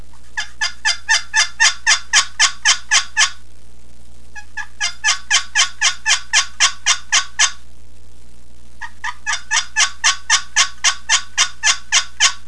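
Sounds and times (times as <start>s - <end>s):
turkey yelps: 0.3s - 3.4s, 4.4s - 7.6s, 8.8s - 12.4s.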